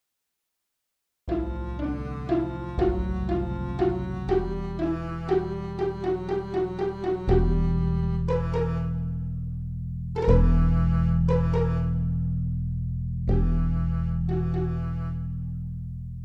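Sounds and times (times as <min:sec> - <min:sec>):
evil melody: 0:01.3 - 0:09.5, 0:10.2 - 0:12.6, 0:13.3 - 0:15.6.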